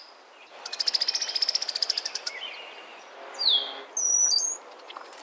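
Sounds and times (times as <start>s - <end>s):
brown-headed cowbird calling: 0.6s - 5.0s.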